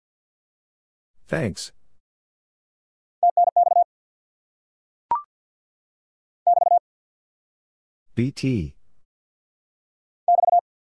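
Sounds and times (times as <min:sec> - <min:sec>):
speech: 0:01.3 - 0:01.8, 0:08.2 - 0:08.8
very fast Morse code sending amateur radio contact phrases: 0:03.2 - 0:03.9, 0:06.5 - 0:06.8, 0:10.3 - 0:10.6.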